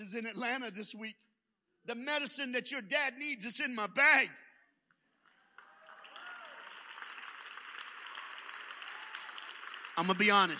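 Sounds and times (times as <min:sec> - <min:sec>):
speech: 0:00.1 - 0:04.4, 0:10.0 - 0:10.5
polite subdued audience clapping: 0:04.8 - 0:10.5.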